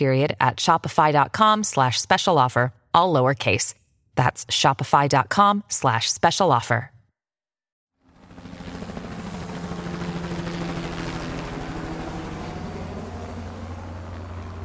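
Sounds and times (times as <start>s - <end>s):
speech: 0.0s - 7.0s
helicopter rotor roar: 8.0s - 14.6s
helicopter low engine hum: 9.0s - 14.6s.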